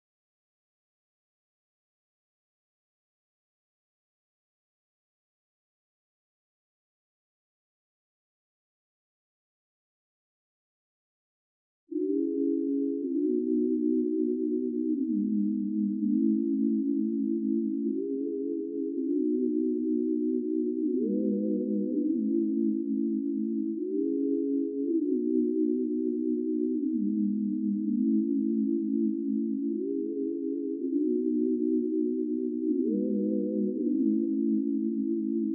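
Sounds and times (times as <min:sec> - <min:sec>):
162 BPM E major pad loop: 0:12.0 - 0:35.5.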